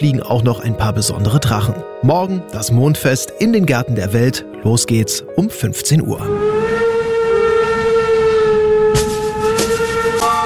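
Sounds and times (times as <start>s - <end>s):
speech: 0.0s - 6.8s
train horn blast: 6.2s - 10.4s.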